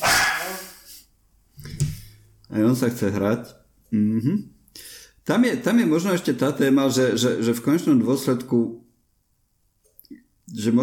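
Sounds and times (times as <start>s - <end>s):
dog barking playfully: 0.0s - 0.6s
speech: 2.5s - 8.8s, 10.5s - 10.8s.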